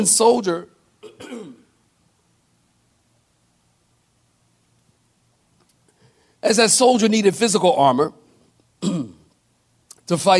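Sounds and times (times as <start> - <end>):
speech: 0.0 - 1.6, 6.4 - 8.2, 8.8 - 9.2, 10.1 - 10.3
throat clearing from someone troubled by allergies: 1.0 - 1.7, 8.8 - 9.4.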